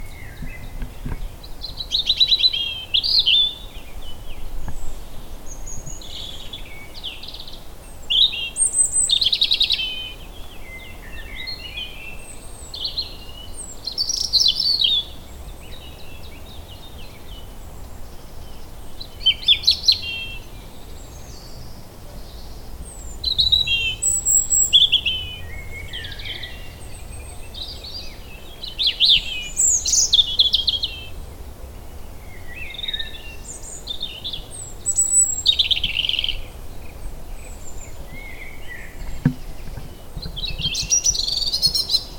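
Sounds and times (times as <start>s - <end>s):
European robin Erithacus rubecula singing: 0.0s - 42.1s.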